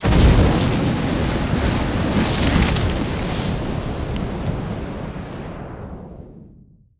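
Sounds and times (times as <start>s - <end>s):
streaming waves: 0.1s - 5.1s.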